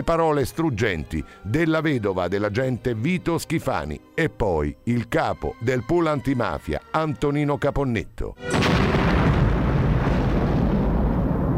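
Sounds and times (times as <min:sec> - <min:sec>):
speech: 0:00.0 - 0:09.0
explosion of a 500 kg TNT bomb on a motorway: 0:08.5 - 0:11.5.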